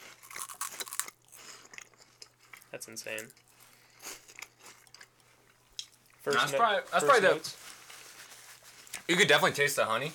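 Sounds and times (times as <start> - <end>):
crunching and chewing of a honey Cheetos chip: 0.0 - 5.2
speech: 2.7 - 3.5, 6.2 - 7.6, 9.1 - 10.1.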